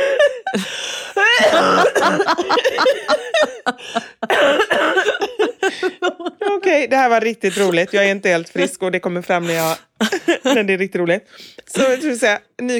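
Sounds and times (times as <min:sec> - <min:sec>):
gasping breaths: 0:00.0 - 0:01.3, 0:03.7 - 0:04.3
laughter: 0:00.0 - 0:06.8, 0:07.4 - 0:08.8
speech: 0:00.5 - 0:00.8, 0:01.4 - 0:04.6, 0:06.8 - 0:12.7
person coughing: 0:01.2 - 0:02.8, 0:04.2 - 0:05.7.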